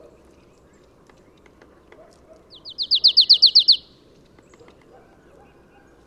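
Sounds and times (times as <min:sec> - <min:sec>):
Marsh tit Poecile palustris calling: 0:02.5 - 0:03.9.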